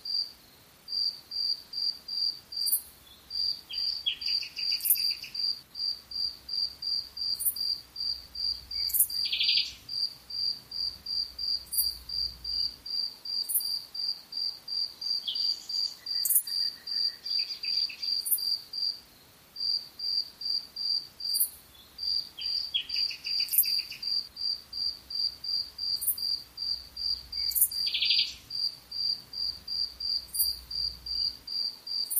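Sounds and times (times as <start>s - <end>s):
crickets chirping at night: 0.0s - 32.1s.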